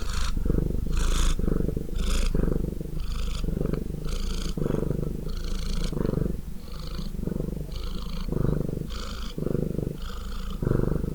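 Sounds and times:
cat purring: 0.0 - 11.1.

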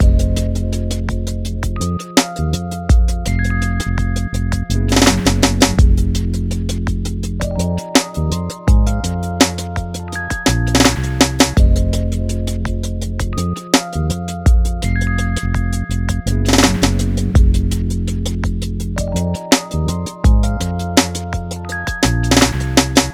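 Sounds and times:
ambient music loop at 83 bpm: 0.0 - 23.1.

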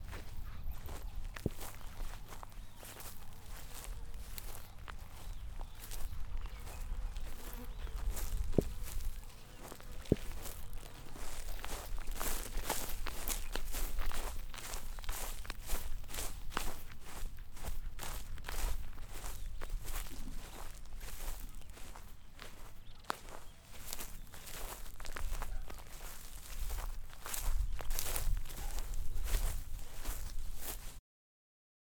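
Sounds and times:
footsteps walking in a field: 0.0 - 31.0.

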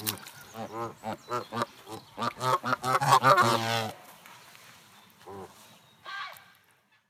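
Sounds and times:
Canada geese honking: 0.5 - 4.0.

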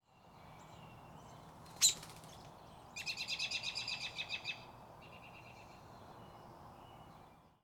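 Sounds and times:
bird chirping: 0.1 - 7.6
bird taking off flapping wings: 1.7 - 2.4.

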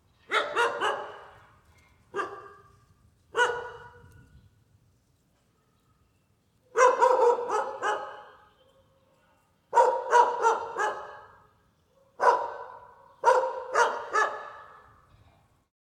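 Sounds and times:
dog barking in a neighborhood: 0.3 - 1.4, 2.1 - 2.7, 3.3 - 4.1, 6.7 - 8.4, 9.7 - 11.4, 12.0 - 14.9.

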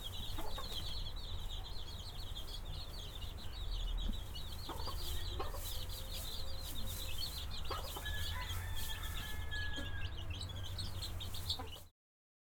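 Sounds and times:
hen clucking softly: 0.0 - 1.7, 4.0 - 11.9
chicken chicks peeping: 0.0 - 11.9.

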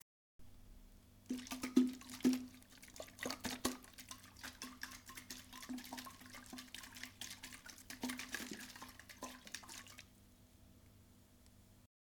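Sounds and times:
water bottle shaking: 1.3 - 10.1.

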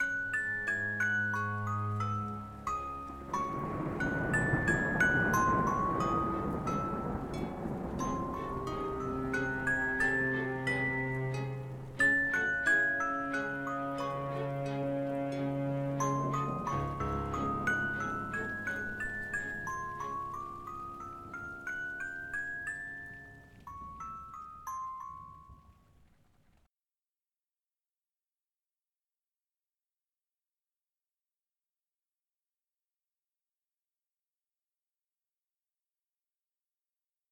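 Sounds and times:
magic rainy atmosphere: 0.0 - 26.7.

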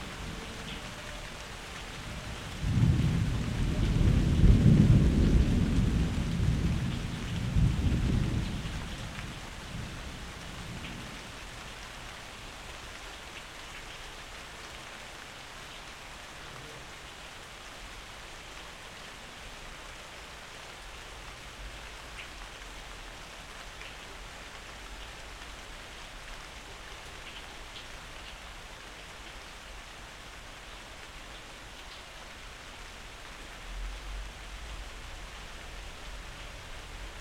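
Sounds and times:
rain: 0.0 - 37.1
thunder: 2.5 - 8.9.

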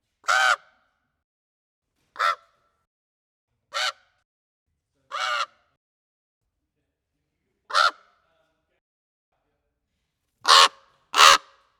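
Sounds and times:
common raven croaking caws: 0.3 - 0.8, 2.2 - 2.5, 3.8 - 4.0, 5.1 - 5.6, 7.7 - 8.0, 10.5 - 11.6.

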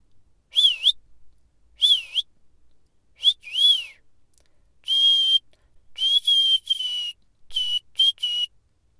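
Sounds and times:
whistling: 0.5 - 1.0, 1.8 - 2.3, 3.2 - 4.0, 4.8 - 8.6.

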